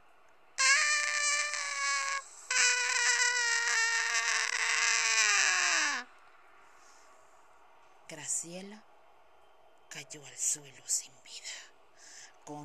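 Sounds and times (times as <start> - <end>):
harsh piercing scream: 0.6 - 6.1
speech: 8.2 - 8.9, 10.0 - 11.7.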